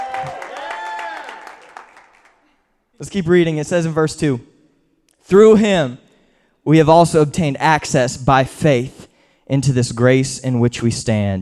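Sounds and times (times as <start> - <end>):
people cheering and whooping: 0.0 - 1.9
audience applause during a sermon: 0.0 - 2.4
speech: 3.0 - 4.5, 5.3 - 6.0, 6.6 - 11.3.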